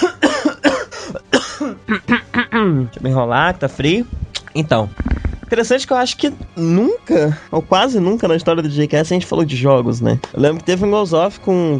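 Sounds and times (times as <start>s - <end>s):
harsh throaty coughing: 0.0s - 2.7s
speech: 2.7s - 11.7s.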